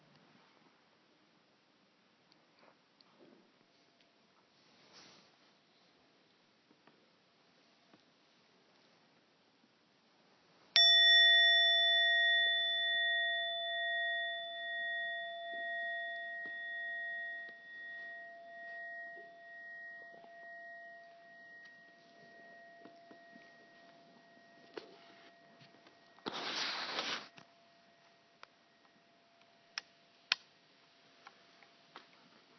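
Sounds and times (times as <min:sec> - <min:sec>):
meditation bell struck softly: 0:10.8 - 0:26.5.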